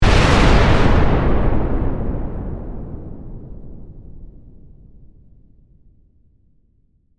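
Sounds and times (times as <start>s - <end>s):
massive bomb explosion in warfare: 0.0s - 5.4s.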